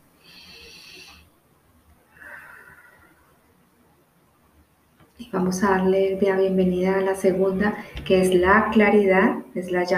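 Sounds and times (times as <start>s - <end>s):
deep breath with long airy inhale and breathy exhale: 0.2s - 1.3s, 2.1s - 3.4s
speech: 5.2s - 9.9s.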